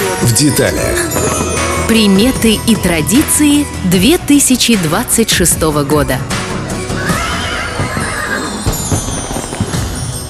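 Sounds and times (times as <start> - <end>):
speech: 0.2 - 6.4
horse giving a long loud whinny: 6.9 - 8.9.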